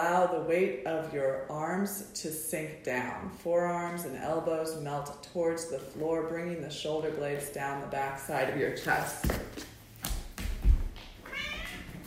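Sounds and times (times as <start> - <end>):
speech: 0.0 - 9.4
cat meowing: 11.3 - 11.9.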